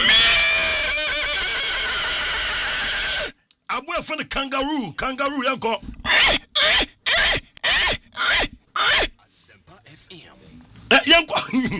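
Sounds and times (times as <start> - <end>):
person imitating a horse's neigh: 0.0 - 3.3, 6.0 - 9.2
speech: 4.0 - 6.9, 11.2 - 11.7.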